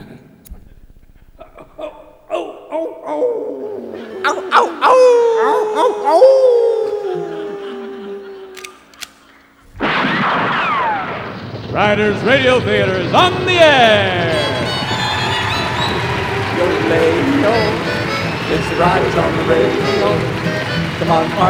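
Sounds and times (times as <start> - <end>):
laughter: 1.2 - 10.1, 11.0 - 21.4
coyote howling with yipping overtones: 1.4 - 9.9, 12.3 - 21.4
speech: 4.2 - 6.6, 11.8 - 14.5, 18.5 - 21.4
sharp bangs: 8.6 - 21.4
loud burst of noise: 9.6 - 21.4.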